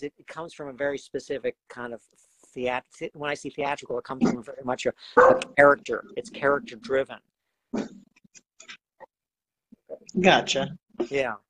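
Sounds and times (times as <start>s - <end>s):
speech: 0.0s - 8.1s, 10.0s - 11.4s
dog barking: 5.2s - 5.5s.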